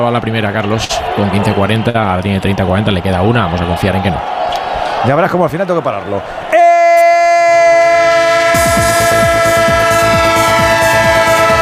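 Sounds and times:
speech: 0.0s - 6.5s
loud sustained train horn chord: 7.8s - 11.6s.

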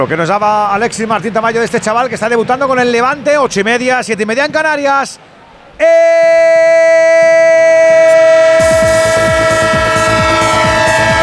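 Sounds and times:
speech: 0.0s - 8.2s
train horn: 8.2s - 11.2s.

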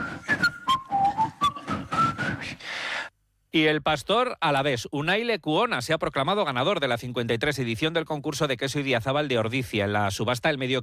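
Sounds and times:
crowd whistling a TV theme melody: 0.0s - 2.6s
speech: 3.6s - 10.8s.

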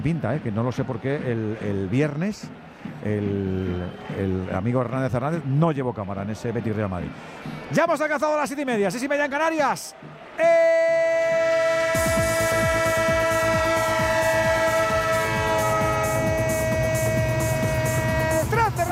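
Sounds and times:
speech: 0.0s - 10.9s
train horn sound effect: 11.2s - 18.8s.

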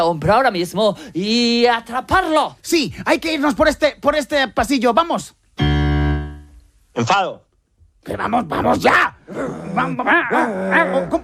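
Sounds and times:
speech: 0.0s - 5.7s, 7.0s - 7.4s, 8.0s - 11.2s
small dog growling and barking angrily: 9.3s - 11.2s.

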